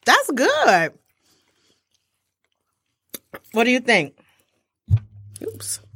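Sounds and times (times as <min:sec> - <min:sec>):
speech: 0:00.0 - 0:01.0, 0:03.5 - 0:04.2, 0:04.9 - 0:05.8
chewing popcorn: 0:00.9 - 0:03.3.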